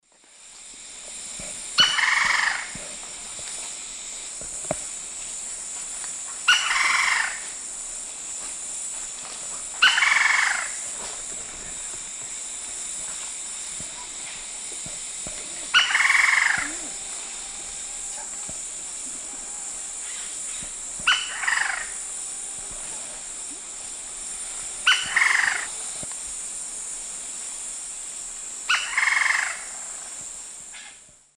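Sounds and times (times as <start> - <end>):
Dryocopus lineatus alarm call in South America: 1.8 - 2.8, 6.4 - 7.5, 9.8 - 10.8, 15.7 - 22.7, 24.4 - 26.0, 28.7 - 29.8.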